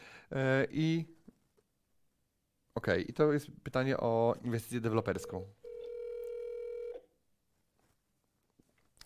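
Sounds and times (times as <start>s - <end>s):
speech: 0.3s - 1.2s, 2.8s - 5.6s
telephone dialing tone of an outgoing call: 5.6s - 7.0s.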